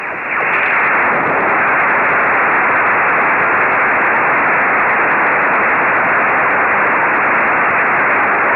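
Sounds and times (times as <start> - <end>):
GMSK radio beacon signal on 145 MHz: 0.0 - 8.4.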